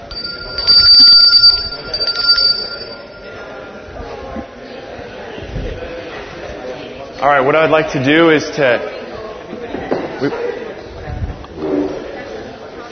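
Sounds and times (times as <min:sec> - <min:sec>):
bright bell ringing to signal end of discussion: 0:00.0 - 0:03.6
murmur of many people chatting: 0:00.0 - 0:12.9
speech: 0:00.8 - 0:03.0, 0:07.2 - 0:09.0, 0:10.2 - 0:10.5.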